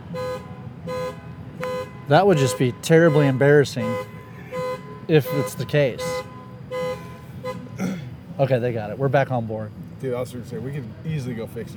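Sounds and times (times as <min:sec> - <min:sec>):
car alarm horn blasts: 0:00.0 - 0:07.8
speech: 0:02.1 - 0:04.1, 0:05.1 - 0:06.3, 0:08.4 - 0:11.7.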